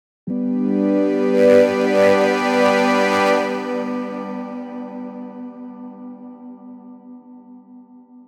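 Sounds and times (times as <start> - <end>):
trance music on a synthesizer: 0.3 - 6.0.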